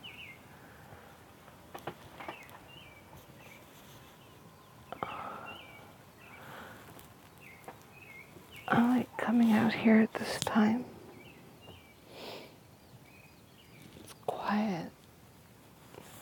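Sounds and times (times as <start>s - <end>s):
birds chirping at dawn: 0.0s - 15.1s
faint taps and rustles: 1.4s - 4.2s, 6.8s - 10.6s
speech: 8.7s - 10.9s.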